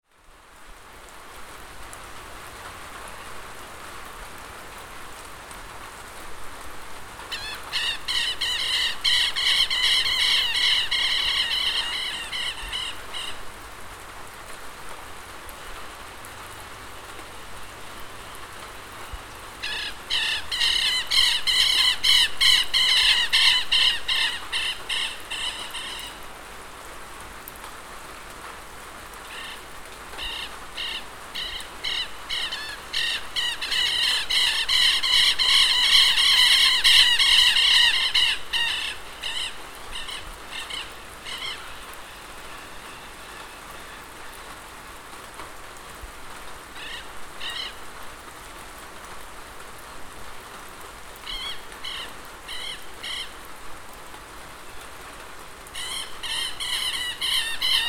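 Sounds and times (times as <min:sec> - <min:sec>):
rain in Isla de Maipo: 0:00.0 - 0:57.8
queltehues calling in Isla de Maipo: 0:07.3 - 0:13.5, 0:19.6 - 0:26.3, 0:29.3 - 0:44.6, 0:46.7 - 0:47.8, 0:51.2 - 0:53.5, 0:55.8 - 0:57.8.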